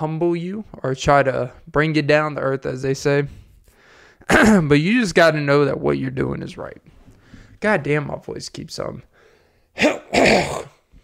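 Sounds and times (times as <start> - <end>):
speech: 0.0 - 3.4, 4.3 - 6.9, 7.6 - 9.1, 9.8 - 10.7
person coughing harshly: 4.3 - 4.7, 9.8 - 10.9.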